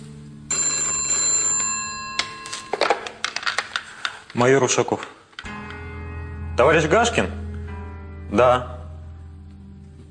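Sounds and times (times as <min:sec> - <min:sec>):
telephone bell ringing: 0:00.5 - 0:03.2
speech: 0:04.4 - 0:05.2, 0:06.6 - 0:07.4, 0:08.3 - 0:08.8.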